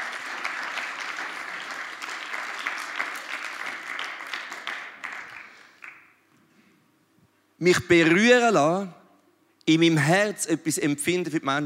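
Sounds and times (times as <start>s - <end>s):
audience applause: 0.0s - 6.1s
speech: 7.6s - 9.0s, 9.7s - 11.6s.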